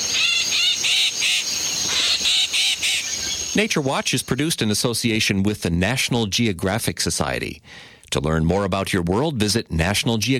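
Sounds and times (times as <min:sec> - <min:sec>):
yellow-headed blackbird harsh buzzy call in a swamp: 0:00.0 - 0:03.6
steady hiss of marsh insects: 0:00.0 - 0:05.3
speech: 0:03.6 - 0:10.3.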